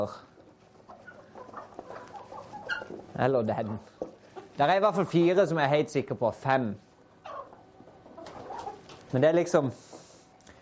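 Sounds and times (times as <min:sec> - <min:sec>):
speech: 0:00.0 - 0:00.3, 0:03.2 - 0:04.0, 0:04.6 - 0:06.8, 0:09.1 - 0:09.9
hen clucking: 0:00.0 - 0:05.3, 0:06.9 - 0:09.1.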